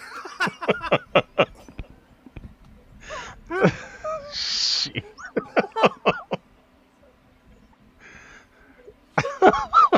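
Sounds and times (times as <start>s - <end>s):
short choppy voiced sounds like stifled laughter: 0.0s - 1.8s, 3.5s - 6.4s, 9.1s - 9.9s
heavy wheezing breathing into the microphone: 3.0s - 4.4s, 8.0s - 9.0s.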